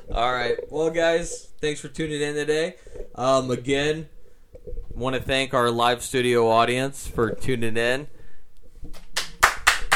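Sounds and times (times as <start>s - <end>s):
speech: 0.1s - 8.2s
person clapping hands: 9.0s - 9.9s.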